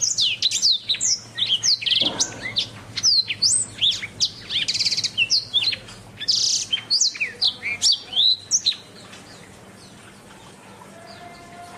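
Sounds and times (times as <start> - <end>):
Oriental magpie-robin singing a busy medley of whistles and rattles: 0.0 - 8.9.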